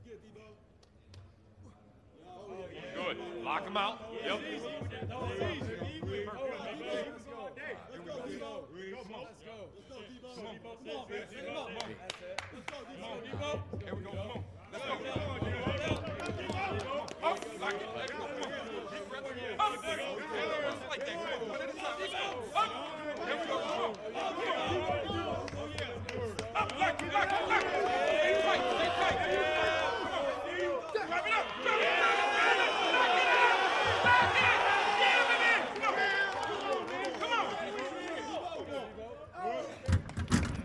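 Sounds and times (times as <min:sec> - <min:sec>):
speech: 0:03.1 - 0:16.0
group of people shouting and cheering on players during a drill: 0:12.7 - 0:40.0.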